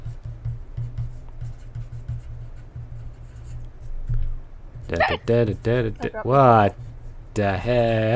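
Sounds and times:
pencil writing on paper: 0.0 - 3.6
speech: 4.9 - 6.8, 7.4 - 8.1.

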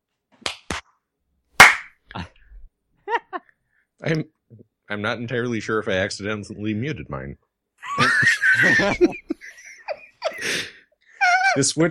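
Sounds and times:
group hand claps to sync recordings: 0.4 - 0.8, 1.6 - 2.0
laughter: 3.0 - 3.5, 7.8 - 10.6
speech: 4.0 - 7.5, 8.2 - 9.3, 11.6 - 11.8.

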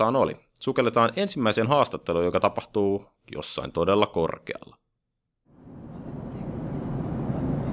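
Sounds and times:
speech: 0.0 - 4.8
airplane cabin engine and air hum in flight: 5.5 - 7.7.

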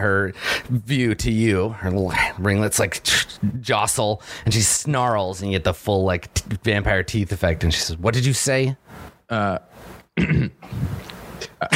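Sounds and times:
speech: 0.1 - 11.7
storyteller clearing throat acting out a character: 10.2 - 11.7.

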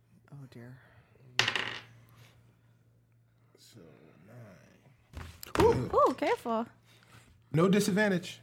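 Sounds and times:
speech: 0.5 - 1.8, 3.6 - 6.8, 7.5 - 8.4
dice clattering onto a hard tabletop in a game: 1.4 - 2.0.

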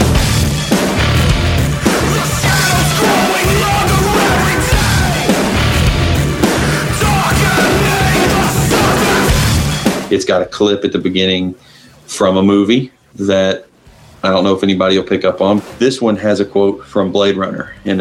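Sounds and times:
distorted guitars: 0.0 - 10.2
driving drums: 0.0 - 10.2
loud dense hardcore punk track: 0.0 - 10.2
raw shouted vocals: 1.9 - 5.8, 6.8 - 9.5
speech: 10.2 - 17.9.

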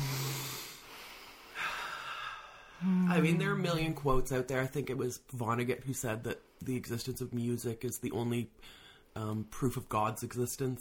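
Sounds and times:
group taking a slow deep breath together: 0.0 - 3.1
speech: 2.8 - 10.7.

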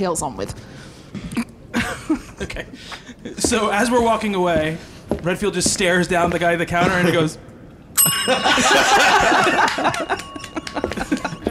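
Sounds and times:
speech: 0.0 - 1.4, 2.4 - 10.4
counter service bell ringing: 8.0 - 11.5
people laughing loudly: 8.3 - 11.5.

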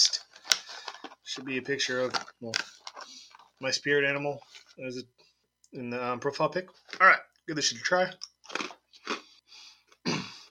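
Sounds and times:
speech: 1.4 - 2.8, 3.6 - 8.2
crunchy baked cheese snack being chewed: 8.2 - 9.4.

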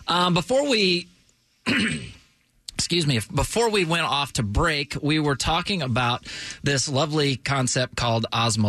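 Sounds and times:
speech: 0.1 - 2.2, 2.8 - 8.6
person clearing throat: 1.6 - 2.3.

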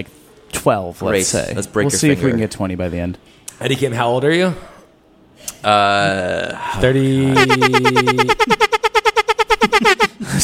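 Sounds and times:
speech: 0.0 - 4.7, 5.4 - 8.8, 9.8 - 10.4
loud air horn blasts: 7.4 - 10.3.

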